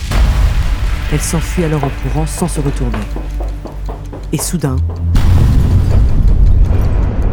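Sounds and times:
deafening explosion shattering windows and bringing down a ceiling: 0.0 - 2.1, 5.1 - 7.3
speech: 1.1 - 3.4, 4.3 - 5.2.

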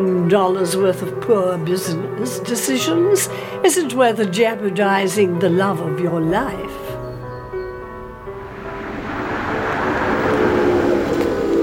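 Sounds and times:
speech: 0.3 - 6.9
car pulling up with engine rumble: 6.2 - 11.6
car tire noise: 6.2 - 11.6.

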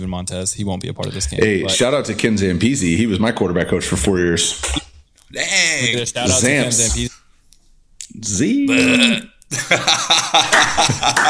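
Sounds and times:
speech: 0.0 - 4.8, 5.8 - 7.1, 8.2 - 11.2
long loud burp after drinking Diet Pepsi: 8.7 - 9.4
laughter: 9.5 - 11.2.

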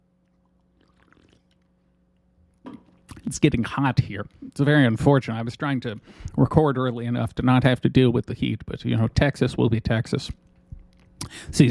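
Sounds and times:
person drinking a sip of water: 0.0 - 3.4, 10.3 - 11.5
steady low electrical hum: 0.0 - 11.7
speech: 3.3 - 10.4, 11.2 - 11.7.

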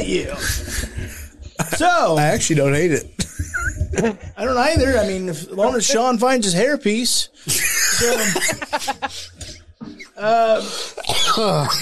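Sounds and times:
speech: 0.0 - 1.2, 1.8 - 3.2, 4.0 - 9.3, 10.2 - 11.8
laughter: 0.4 - 2.6, 3.2 - 5.0, 7.4 - 9.6
person coughing: 10.9 - 11.8
throat clearing: 11.0 - 11.8.

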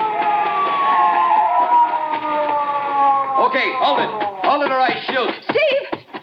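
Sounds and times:
police car siren wailing: 0.0 - 4.6
speech: 3.5 - 6.0.

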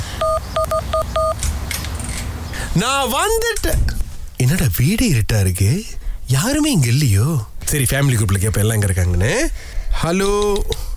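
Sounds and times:
electronic keypad beeps entering a house door code: 0.2 - 1.4
speech: 2.8 - 10.8.

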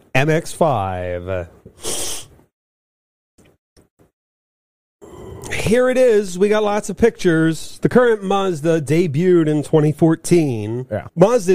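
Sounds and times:
speech: 0.2 - 2.0, 5.7 - 11.5
person sneezing: 1.8 - 2.4
sniffles or small breaths: 1.8 - 2.4.

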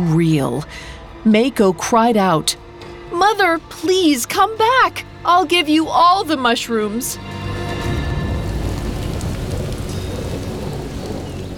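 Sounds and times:
speech: 0.0 - 2.6, 3.2 - 7.4
steady light rain pattering: 7.2 - 11.5.

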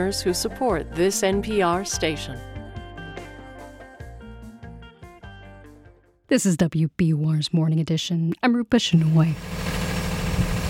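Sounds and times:
speech: 0.0 - 2.5, 6.3 - 9.7
loud diesel yellow school bus engine idling: 9.4 - 10.6.

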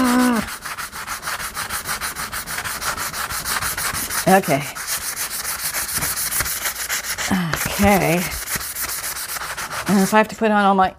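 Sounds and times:
coarse sanding pad sanding a gesso surface: 0.0 - 10.6
speech: 4.3 - 4.8, 7.8 - 8.4, 9.9 - 10.9.

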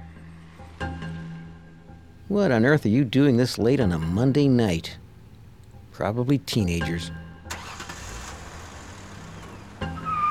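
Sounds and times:
speech: 2.3 - 5.0, 6.0 - 7.2
car engine driving and speeding off: 7.4 - 10.3
car tire squeal: 8.9 - 10.3.

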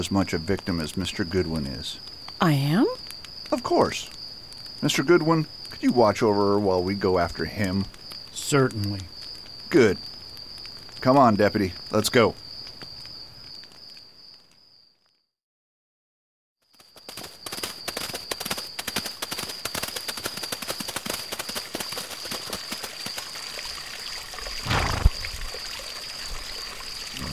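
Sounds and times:
speech: 0.0 - 4.2, 4.8 - 9.1, 9.7 - 10.1, 11.0 - 12.4
stream flowing: 21.9 - 27.3.

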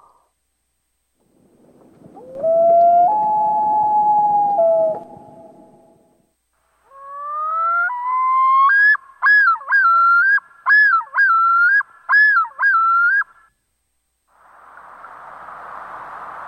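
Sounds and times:
common loon hoot: 2.2 - 6.1, 6.9 - 13.4
common loon rapid quavering tremolo: 2.3 - 6.2.

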